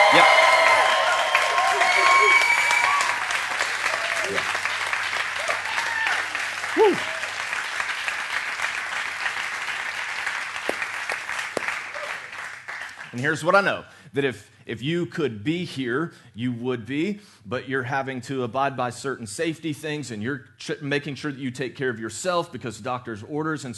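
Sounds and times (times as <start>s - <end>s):
whoops from the crowd: 0.0s - 4.7s, 5.4s - 7.5s, 11.9s - 12.3s
large crowd in a building cheering and clapping: 0.0s - 13.2s
speech: 0.2s - 0.4s, 13.2s - 23.7s.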